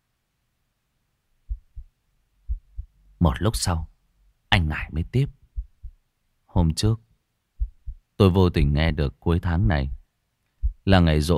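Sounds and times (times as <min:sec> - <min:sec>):
heartbeat sound effect of a heart pounding: 0:01.5 - 0:03.0, 0:05.3 - 0:06.0, 0:07.6 - 0:08.9, 0:09.7 - 0:10.0, 0:10.6 - 0:10.9
speech: 0:03.2 - 0:03.9, 0:04.6 - 0:05.4, 0:06.6 - 0:07.0, 0:08.2 - 0:10.0, 0:10.9 - 0:11.3.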